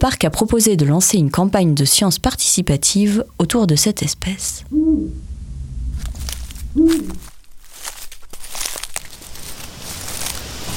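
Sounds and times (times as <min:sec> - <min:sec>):
speech: 0:00.0 - 0:05.3, 0:06.8 - 0:07.3
low rumble: 0:03.2 - 0:09.3
Eurasian eagle-owl hooting: 0:04.4 - 0:05.3, 0:06.6 - 0:07.4
rustling and crinkling: 0:05.8 - 0:10.7.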